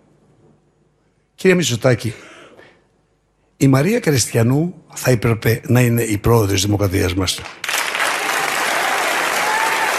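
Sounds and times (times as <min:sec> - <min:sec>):
speech: 0:01.4 - 0:02.3, 0:03.6 - 0:07.6
audience applauding: 0:07.4 - 0:09.9.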